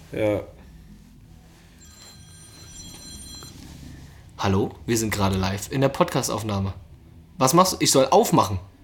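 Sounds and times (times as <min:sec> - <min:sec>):
speech: 0:00.1 - 0:00.6, 0:04.4 - 0:06.8, 0:07.4 - 0:08.7
telephone ringing with high-pitched electronic trill: 0:01.8 - 0:04.2.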